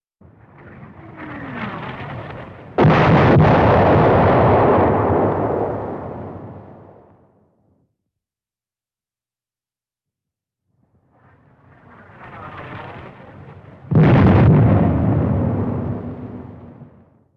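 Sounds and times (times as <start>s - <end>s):
105 mm howitzer shell approaching: 0.2s - 7.1s, 11.0s - 17.2s.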